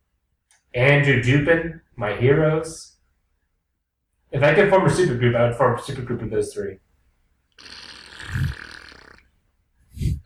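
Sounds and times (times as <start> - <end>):
speech: 0.7 - 2.9, 4.3 - 6.8
wet buzzing mouth fart blown at a microphone: 7.6 - 9.3.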